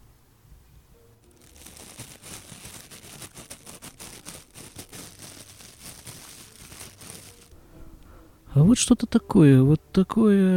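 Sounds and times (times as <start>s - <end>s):
tissue paper rustled between fingers: 1.2s - 7.6s
speech: 8.6s - 10.5s.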